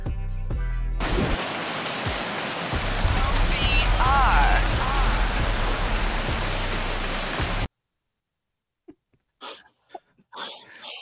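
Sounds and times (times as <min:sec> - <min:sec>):
steady dense rainfall: 0:01.0 - 0:07.7
man talking: 0:03.1 - 0:05.5.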